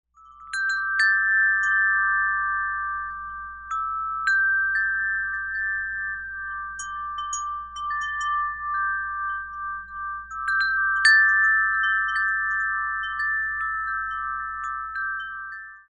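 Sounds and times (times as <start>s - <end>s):
bronze dragonfly wind chime ringing: 0.1s - 15.8s.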